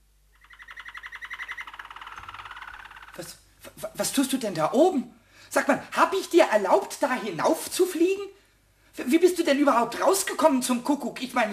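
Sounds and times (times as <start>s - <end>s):
canary trilling on a curtain rod: 0.3s - 3.2s
speech: 3.2s - 8.4s, 9.0s - 11.5s.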